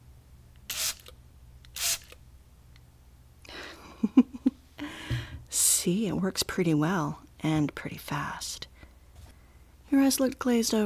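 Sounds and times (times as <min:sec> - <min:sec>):
spray bottle spraying: 0:00.7 - 0:01.1, 0:01.8 - 0:02.2
speech: 0:05.8 - 0:08.7, 0:09.9 - 0:10.8.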